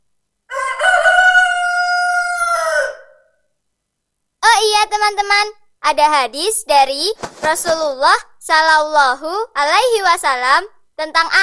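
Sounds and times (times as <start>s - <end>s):
rooster crowing: 0.5s - 3.4s
speech: 5.4s - 11.4s.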